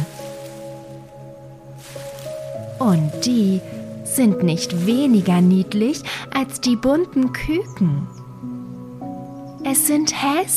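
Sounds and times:
rustling and scuffling in hedges: 0:00.0 - 0:07.3
steady sustained musical drone: 0:00.0 - 0:09.4
speech: 0:02.8 - 0:08.2, 0:09.7 - 0:10.5.

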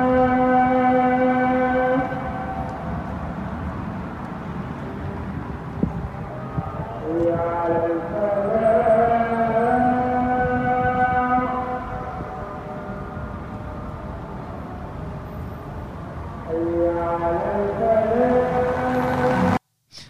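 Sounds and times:
muezzin's call to prayer over a loudspeaker: 0:00.0 - 0:03.0, 0:05.8 - 0:14.8, 0:16.3 - 0:19.6
passing cars: 0:00.0 - 0:19.6
people on the pavements: 0:00.0 - 0:20.0.

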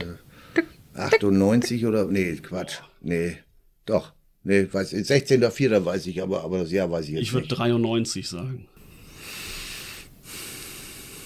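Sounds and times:
speech: 0:01.2 - 0:08.7
man breathing heavily: 0:08.8 - 0:11.2.

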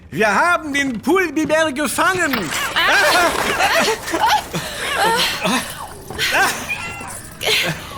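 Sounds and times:
speech: 0:00.1 - 0:06.7, 0:07.4 - 0:07.9
breathy chuckle-like sounds: 0:02.7 - 0:07.9
several cats meowing and yowling: 0:02.8 - 0:07.9.

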